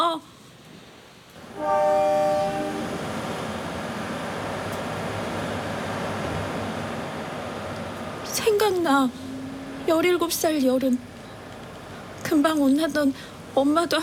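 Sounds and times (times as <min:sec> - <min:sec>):
train horn blaring at a train station: 0:01.4 - 0:03.6
train rolling past at a train station: 0:01.4 - 0:13.0
speech: 0:08.4 - 0:09.2, 0:09.8 - 0:11.1, 0:12.3 - 0:14.0.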